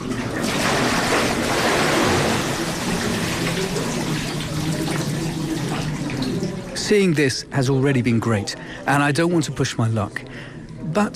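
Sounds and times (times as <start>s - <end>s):
cold mountain water sloshing and splashing in a stone bath: 0.0s - 7.2s
speech: 6.9s - 11.1s.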